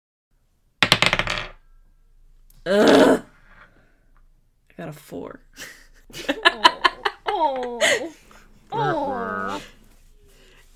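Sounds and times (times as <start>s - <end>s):
dice clattering and tumbling across a hard surface: 0.8s - 1.6s
speech: 2.6s - 3.2s, 4.8s - 6.8s
person groaning: 2.6s - 3.3s
laughter: 5.6s - 8.4s.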